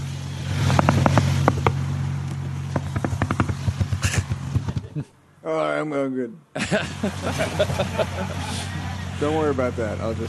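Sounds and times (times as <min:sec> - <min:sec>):
sharp knocks and clattering thumps of a car hitting a sign: 0:00.0 - 0:05.1
car engine humming as the vehicle rolls forward: 0:00.0 - 0:05.8, 0:06.6 - 0:10.2
speech: 0:05.5 - 0:10.2
laughter: 0:06.6 - 0:09.2.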